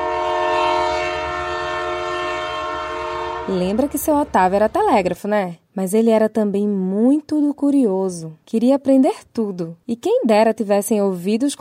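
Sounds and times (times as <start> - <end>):
heavy freight train horn blast: 0.0 - 4.9
low rumbling of heavy freight train: 0.9 - 5.3
speech: 3.5 - 11.5.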